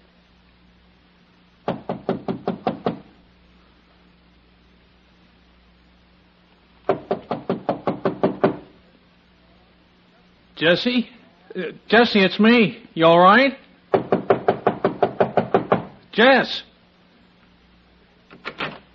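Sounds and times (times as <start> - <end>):
firm knocking on an apartment door: 1.6 - 3.1, 6.9 - 8.7, 13.9 - 16.0
speech: 10.6 - 13.6, 16.2 - 16.7.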